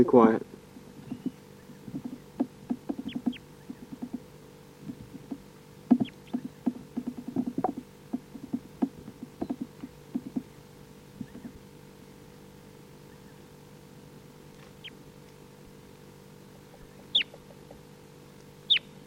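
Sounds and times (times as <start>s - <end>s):
low hum: 0.0s - 19.0s
birds foraging in a tree making clicks and crackles: 0.6s - 12.4s, 13.1s - 15.6s, 16.6s - 18.9s
bird high chip calls: 0.7s - 11.6s, 16.7s - 17.8s, 18.6s - 19.0s.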